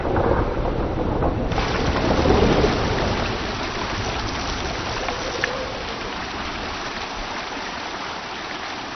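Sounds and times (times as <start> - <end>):
deep rumble of thunder: 0.0 - 7.0
heavy tropical downpour: 0.0 - 8.9.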